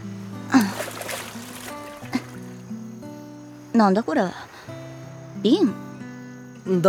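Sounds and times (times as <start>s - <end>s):
brief louder water splashes: 0.0s - 3.1s
gentle waves lapping and splashing: 0.0s - 5.2s
speech: 3.8s - 4.4s, 5.4s - 5.9s, 6.6s - 6.8s.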